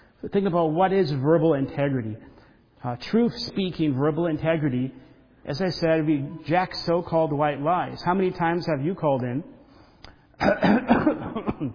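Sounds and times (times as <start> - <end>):
speech: 0.2 - 9.6, 10.4 - 11.7
person putting on a staged hoarse cough: 10.4 - 11.7.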